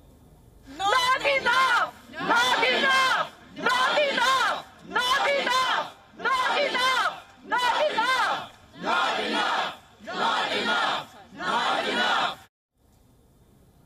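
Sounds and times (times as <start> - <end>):
protest crowd chanting outside a government building: 0.8 - 12.5.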